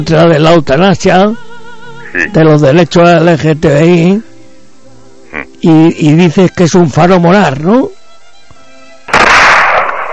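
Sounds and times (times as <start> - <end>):
speech: 0.0 - 1.5, 2.1 - 4.3, 5.6 - 8.0
comic exploding-head explosive blast sound effect: 9.1 - 10.1.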